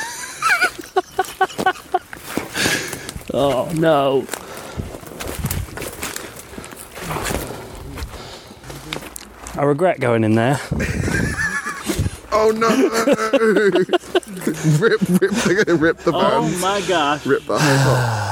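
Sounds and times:
squelching footsteps of wet feet in soaked footwear on sodden ground: 0:00.5 - 0:09.6
speech: 0:03.4 - 0:04.4, 0:09.6 - 0:11.0, 0:12.4 - 0:14.0, 0:14.6 - 0:18.3.

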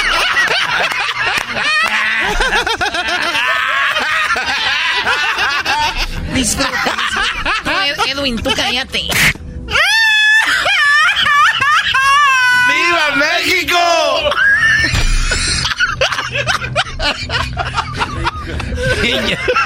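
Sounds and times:
laughter: 0:00.0 - 0:09.1, 0:09.7 - 0:13.2, 0:13.9 - 0:19.6
person wailing and screaming: 0:01.6 - 0:02.5, 0:03.2 - 0:04.4, 0:09.7 - 0:15.7
speech: 0:08.2 - 0:09.3.

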